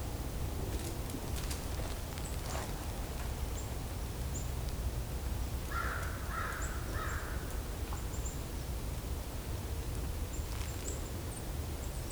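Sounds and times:
steady outdoor noise: 0:00.0 - 0:12.1
crows cawing: 0:05.7 - 0:07.3.

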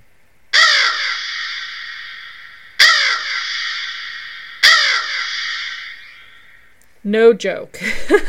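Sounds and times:
bird squawking in cemetery: 0:00.6 - 0:06.8
speech: 0:07.0 - 0:08.2.

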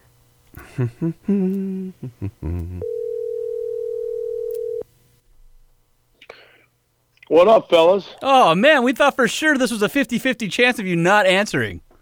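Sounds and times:
speech: 0:00.8 - 0:03.0, 0:07.3 - 0:11.8
telephone keypad tones while dialing: 0:02.8 - 0:04.8.

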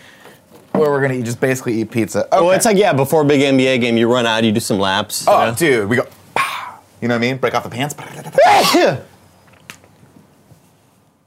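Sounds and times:
speech: 0:00.8 - 0:06.2, 0:07.0 - 0:09.1
person sneezing: 0:08.4 - 0:09.1.

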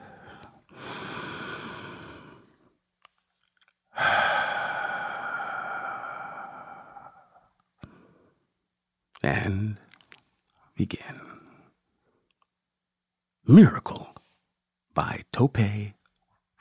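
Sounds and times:
deep breath: 0:00.0 - 0:02.8, 0:03.9 - 0:08.5
speech: 0:09.2 - 0:09.8, 0:10.8 - 0:11.2, 0:13.5 - 0:14.1, 0:15.0 - 0:16.0.

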